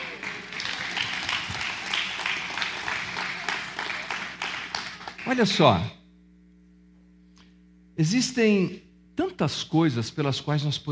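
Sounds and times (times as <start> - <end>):
audience applause: 0.0 - 5.5
speech: 5.3 - 6.0, 8.0 - 10.9.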